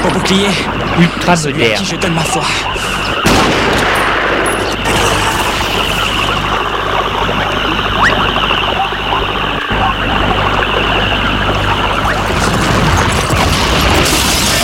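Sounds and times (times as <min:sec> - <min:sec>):
speech: 0:00.1 - 0:03.6
booming battle explosions: 0:03.1 - 0:14.6
rapid battle gunfire crackling: 0:03.2 - 0:06.6, 0:12.2 - 0:14.6.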